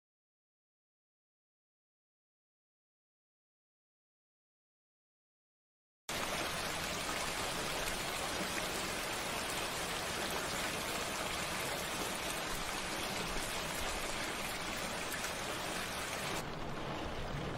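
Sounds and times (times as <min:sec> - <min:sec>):
steady rain falling outside: 0:06.1 - 0:17.5.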